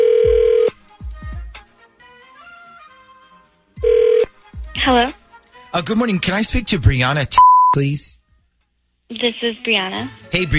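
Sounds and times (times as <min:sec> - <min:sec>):
outgoing phone call ringback tones: 0:00.0 - 0:00.8, 0:03.8 - 0:04.3
speech: 0:04.9 - 0:08.2, 0:09.2 - 0:10.5.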